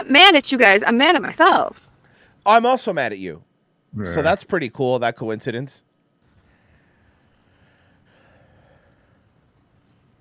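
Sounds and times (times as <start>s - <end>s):
speech: 0.0s - 1.8s, 2.4s - 5.9s
crickets chirping: 0.0s - 2.9s, 6.2s - 10.1s.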